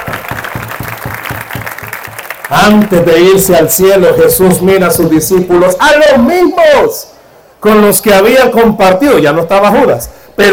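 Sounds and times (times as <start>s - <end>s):
church congregation clapping during a worship service: 0.0s - 3.4s
speech: 2.5s - 10.5s.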